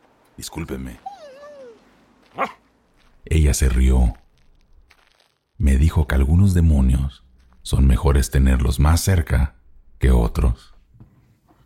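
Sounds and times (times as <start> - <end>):
speech: 0.4 - 1.1, 2.4 - 2.6, 3.2 - 4.2, 5.6 - 10.7
dog whining in a church: 1.0 - 2.6
dog barking in a church: 1.3 - 2.6.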